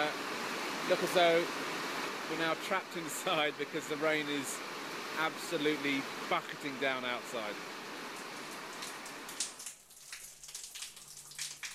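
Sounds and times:
speech: 0.9 - 1.7, 2.3 - 7.8
morning shower trickling a small stream of water from the hot tap: 7.3 - 11.7.

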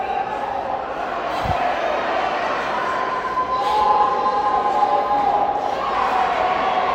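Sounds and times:
packed sold-out arena crowd roaring: 0.0 - 6.9.

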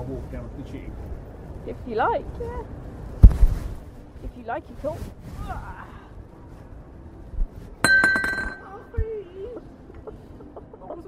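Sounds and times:
speech: 0.0 - 3.3, 4.2 - 6.0
small glass bits tinkling: 7.8 - 8.7
glass crashing on a hard floor: 7.9 - 8.7.

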